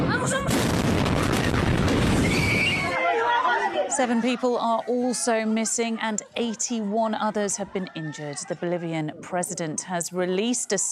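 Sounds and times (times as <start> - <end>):
massive explosion at a military depot: 0.1 - 2.7
people shouting: 1.4 - 4.2
speech: 4.0 - 10.8.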